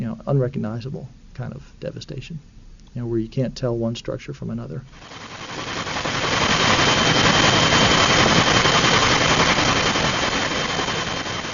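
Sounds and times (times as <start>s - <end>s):
speech: 0.2s - 5.7s
NOAA Bell 212 Twin Huey helicopter rotor chopping: 5.0s - 11.5s.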